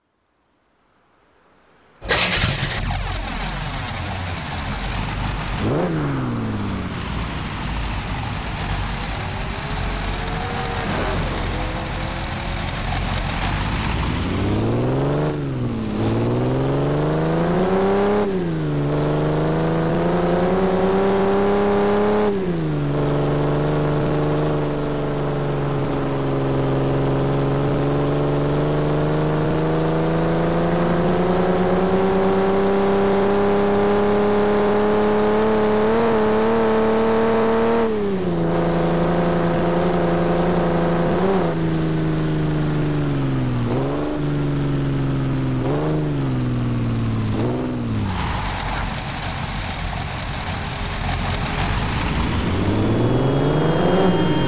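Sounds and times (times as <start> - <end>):
Dino 246 GTS sports car engine: 2.0 - 54.4.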